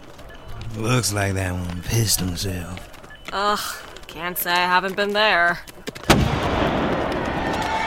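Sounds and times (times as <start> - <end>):
speech: 0.7 - 6.6
old artillery cannon firing stone shot: 6.1 - 7.7.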